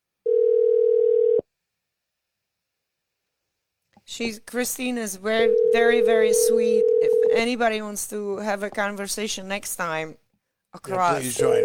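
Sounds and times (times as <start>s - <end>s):
telephone dial tone while placing a call: 0.3s - 1.4s, 6.8s - 7.4s
speech: 4.2s - 11.6s.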